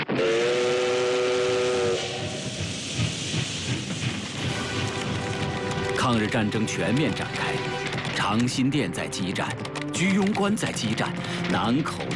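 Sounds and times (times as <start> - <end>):
long steady steam train whistle blowing: 0.1 - 2.6
steam train arriving at Liangxiang chugging: 0.1 - 12.1
hiss of steam from steam train: 0.2 - 5.2
speech: 6.1 - 12.1.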